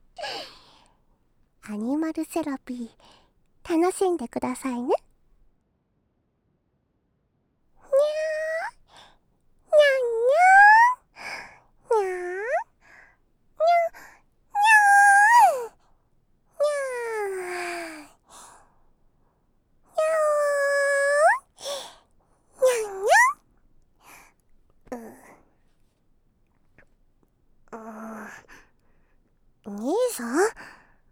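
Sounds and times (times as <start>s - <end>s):
speech: 1.7s - 5.0s
voice imitating a cat meowing: 7.9s - 8.7s, 9.8s - 11.0s, 11.9s - 12.6s, 13.6s - 14.0s, 14.6s - 15.7s, 16.6s - 18.1s, 20.0s - 21.4s, 22.6s - 23.4s, 27.8s - 28.4s.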